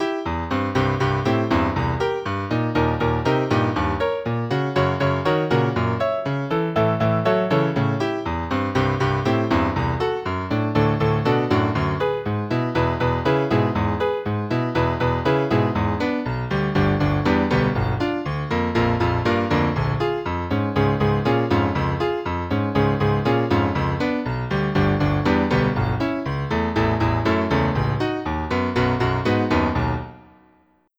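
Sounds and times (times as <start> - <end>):
girl playing piano: 0.0 - 30.9.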